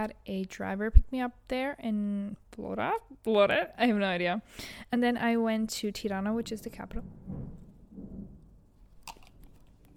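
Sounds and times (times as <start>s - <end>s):
speech: 0.0s - 7.6s
faint rumble of thunder from a thunderstorm: 6.2s - 9.9s.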